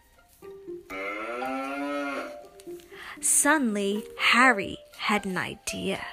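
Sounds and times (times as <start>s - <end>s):
cows mooing low and soft: 0.9s - 2.5s
speech: 3.2s - 6.1s.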